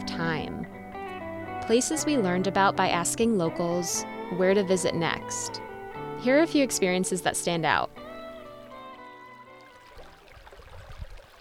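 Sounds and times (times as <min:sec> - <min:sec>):
speech: 0:01.7 - 0:08.0
river water flowing: 0:06.3 - 0:11.4.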